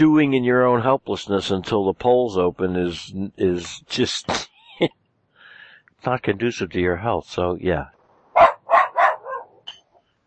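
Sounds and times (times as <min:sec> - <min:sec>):
speech: 0:00.0 - 0:05.0, 0:06.0 - 0:08.0
laughter: 0:04.0 - 0:04.9
tiny female dog barking: 0:08.4 - 0:09.6.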